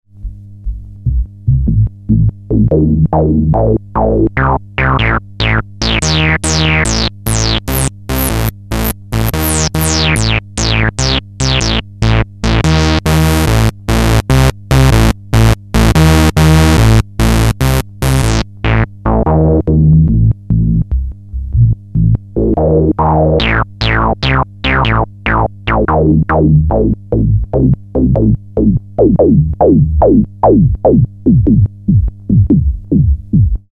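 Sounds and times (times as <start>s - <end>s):
Moog Realistic MG-1 synthesizer filter sweep: 0.6s - 33.6s.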